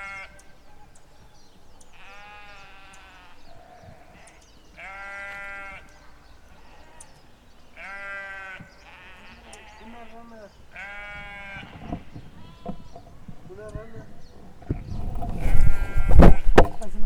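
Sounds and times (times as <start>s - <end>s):
sheep bleating in open land: 0.0s - 0.4s, 2.0s - 13.0s, 14.7s - 16.6s
steady outdoor background noise in open land: 0.0s - 17.0s.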